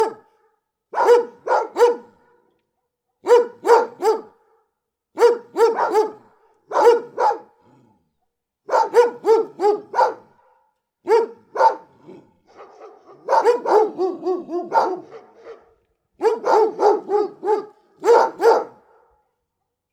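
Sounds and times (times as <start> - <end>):
big dogs barking deeply: 0.0 - 0.3, 1.0 - 2.4, 3.2 - 4.4, 5.2 - 8.0, 8.7 - 19.2.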